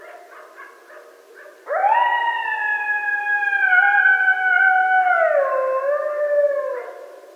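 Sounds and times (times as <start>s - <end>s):
coyote howling at night: 1.7s - 7.2s.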